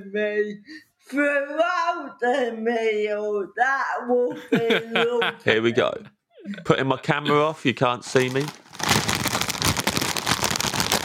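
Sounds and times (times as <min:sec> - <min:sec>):
speech: 0:00.0 - 0:08.6
laughter: 0:04.3 - 0:06.1
crisp packet being opened, crinkling plastic: 0:08.0 - 0:11.0.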